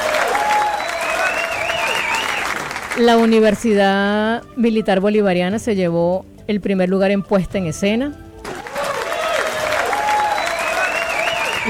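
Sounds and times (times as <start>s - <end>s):
large crowd applauding at an awards ceremony: 0.0s - 3.3s, 8.5s - 11.6s
speech: 3.0s - 8.2s.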